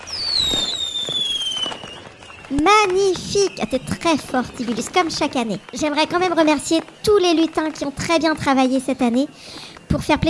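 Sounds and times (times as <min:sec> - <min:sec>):
whistling firework rocket gliding downward in pitch: 0:00.0 - 0:05.8
Christmas firework pops and crackles: 0:00.0 - 0:10.2
speech: 0:02.5 - 0:10.2.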